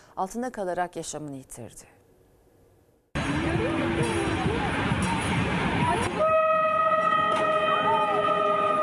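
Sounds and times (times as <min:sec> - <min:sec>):
speech: 0:00.2 - 0:02.0
indistinct voices in busy noisy background: 0:03.2 - 0:08.8
loud train horn blaring: 0:05.8 - 0:08.8.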